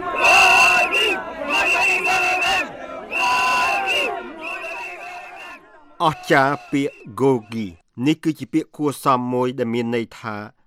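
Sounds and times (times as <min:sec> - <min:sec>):
large street crowd shouting and cheering for a returning former leader: 0:00.0 - 0:07.6
speech: 0:06.0 - 0:10.6.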